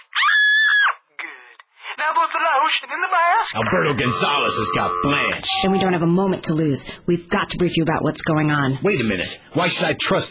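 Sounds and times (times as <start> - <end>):
woman screaming through a tinny phone line: 0.0 - 1.0, 3.9 - 6.0
speech: 2.0 - 10.2.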